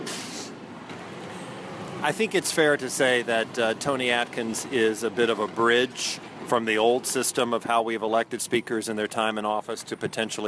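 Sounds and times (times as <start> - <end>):
sharp hiss of truck air brakes: 0.0 - 0.6
large truck rumbling past outside: 0.0 - 9.3
road noise: 0.0 - 10.4
speech: 2.0 - 10.4.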